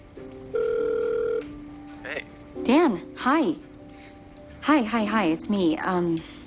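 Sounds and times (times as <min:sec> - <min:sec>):
telephone ringback tone through the earpiece: 0:00.5 - 0:01.5
speech: 0:02.7 - 0:03.7, 0:04.7 - 0:06.4.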